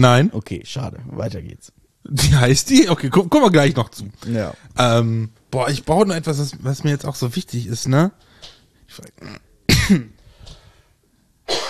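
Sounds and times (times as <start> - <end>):
speech: 0.0 - 8.3, 8.9 - 10.2
person coughing sharply: 9.2 - 10.2, 11.5 - 11.6.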